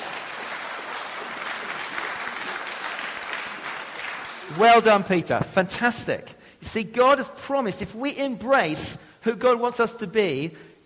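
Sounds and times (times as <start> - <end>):
audience applause: 0.0 - 4.6
speech: 4.5 - 10.8.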